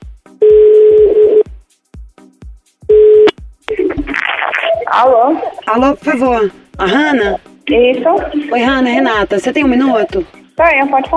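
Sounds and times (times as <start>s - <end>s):
phone number being dialed tones: 0.4s - 1.4s, 2.9s - 3.3s
speech: 4.9s - 11.1s.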